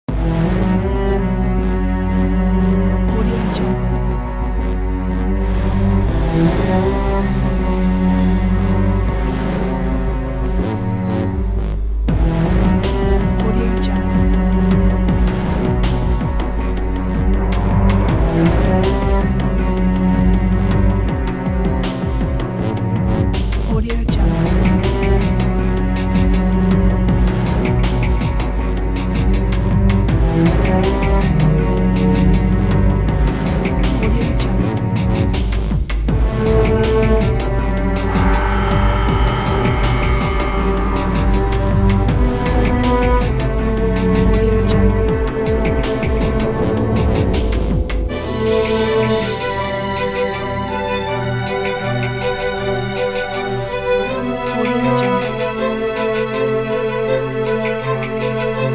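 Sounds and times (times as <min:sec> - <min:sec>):
eerie cinematic horror music: 0:00.1 - 0:58.7.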